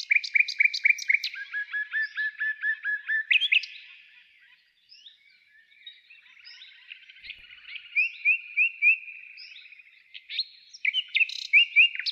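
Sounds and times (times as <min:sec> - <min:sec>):
nightingale singing: 0:00.0 - 0:12.0.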